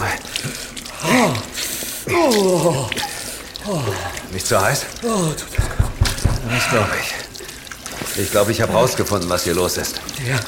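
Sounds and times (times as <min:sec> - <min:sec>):
person making wordless sounds: 0:00.0 - 0:07.4
water running from a galley tap: 0:00.0 - 0:10.4
speech: 0:02.1 - 0:03.1, 0:03.7 - 0:05.7, 0:06.5 - 0:07.2, 0:08.2 - 0:10.4.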